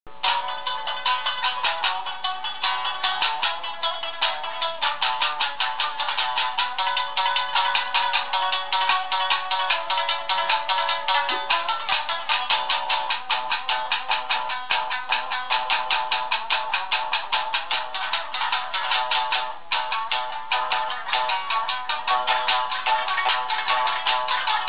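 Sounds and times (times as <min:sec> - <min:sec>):
traditional Japanese music: 0:00.1 - 0:24.6.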